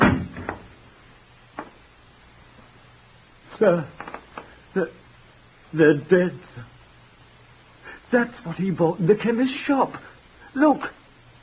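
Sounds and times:
door shutting with a heavy thud: 0.0 - 0.7
speech: 3.6 - 4.0, 4.7 - 5.0, 5.7 - 6.7, 8.1 - 11.0.

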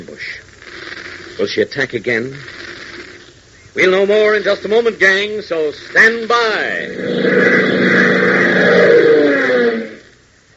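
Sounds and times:
speech: 0.0 - 0.5, 1.4 - 2.6, 3.8 - 8.7
twin-jet aircraft engines roaring while climbing: 6.8 - 10.2.

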